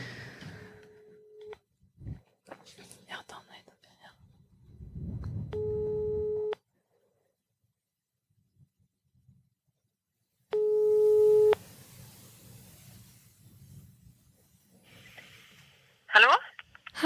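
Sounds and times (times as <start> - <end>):
phone ringback tone over a speakerphone: 5.6 - 6.6, 10.6 - 11.6.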